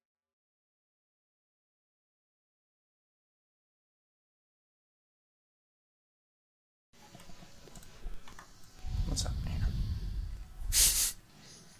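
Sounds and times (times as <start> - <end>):
low rumble: 8.8 - 10.8
loud breathy exhale blown into a microphone: 8.9 - 11.7.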